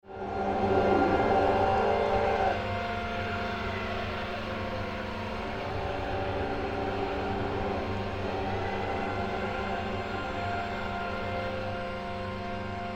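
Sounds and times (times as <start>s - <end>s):
sirens: 0.2s - 12.8s.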